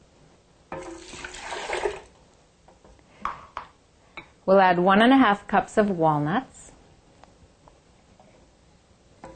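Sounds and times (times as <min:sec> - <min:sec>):
cup of water pouring into blender jar holding whole garlic cloves: 0:00.8 - 0:02.1
speech: 0:04.5 - 0:06.5.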